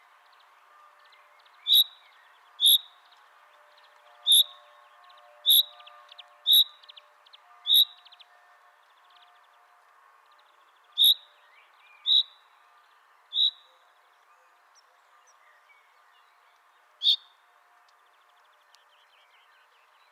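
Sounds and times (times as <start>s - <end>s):
faint steady background noise: 0.0s - 20.1s
Common chaffinch Fringilla coelebs calling with bright single notes: 1.6s - 2.0s, 2.6s - 2.9s, 4.3s - 4.6s, 5.5s - 5.7s, 6.5s - 6.8s, 7.7s - 8.0s, 11.0s - 11.3s, 12.0s - 12.4s, 13.3s - 13.7s.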